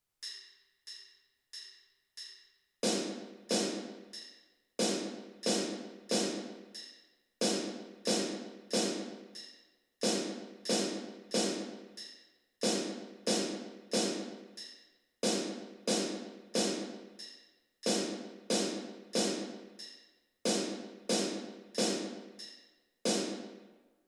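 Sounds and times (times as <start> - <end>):
snare drum of a band on parade: 2.8 - 4.0, 4.8 - 6.6, 7.4 - 9.2, 10.0 - 11.9, 12.6 - 14.4, 15.2 - 17.2, 17.9 - 19.8, 20.5 - 22.4, 23.1 - 23.7.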